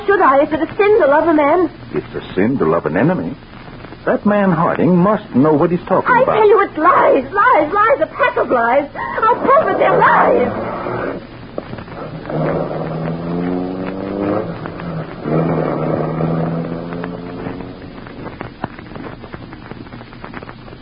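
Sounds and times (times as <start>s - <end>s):
speech: 0.1s - 10.7s
low rumble: 9.2s - 20.7s
car engine revving as vehicle pulls away: 9.4s - 18.6s.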